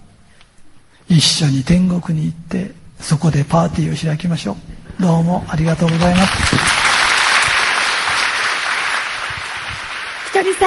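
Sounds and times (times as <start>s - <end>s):
speech: 1.1s - 6.8s
large audience applauding: 5.7s - 10.6s.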